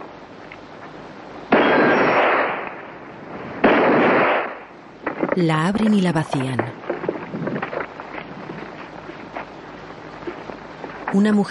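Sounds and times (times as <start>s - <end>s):
gunshots fired at the padlock of a strongbox: 1.5s - 2.8s, 3.6s - 4.7s
speech: 5.4s - 6.8s, 11.1s - 11.4s.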